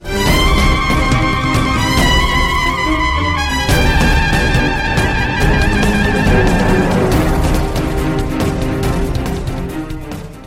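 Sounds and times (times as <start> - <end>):
round ten second count music: 0.0 - 10.4.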